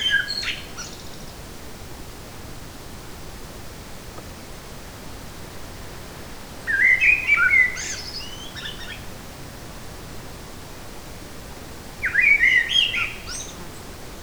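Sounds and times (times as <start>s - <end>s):
Eurasian blackbird song in a forest: 0.0s - 1.4s, 6.6s - 9.1s, 12.0s - 13.9s.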